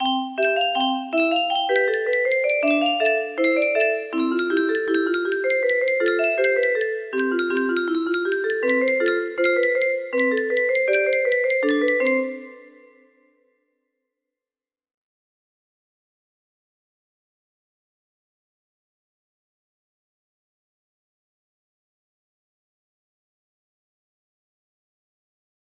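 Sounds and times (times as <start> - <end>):
music box melody: 0.0 - 13.2.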